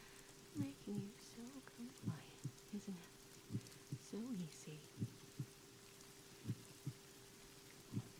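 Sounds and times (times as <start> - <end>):
faint steady hum: 0.0 - 8.1
speech: 0.6 - 3.2
slow heartbeat: 3.5 - 4.1, 5.0 - 5.6, 6.4 - 7.0, 7.9 - 8.1.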